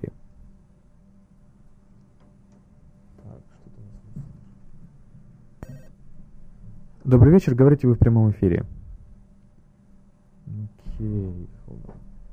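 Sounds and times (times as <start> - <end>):
quiet low hum: 0.0 - 12.3
single short telephone ring: 5.6 - 5.9
speech: 7.1 - 8.8.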